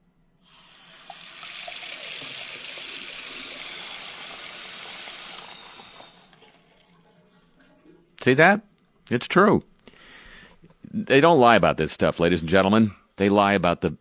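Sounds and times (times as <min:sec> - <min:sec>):
water gushing down a sink drain: 0:00.5 - 0:07.9
speech: 0:08.2 - 0:09.7, 0:10.9 - 0:14.0.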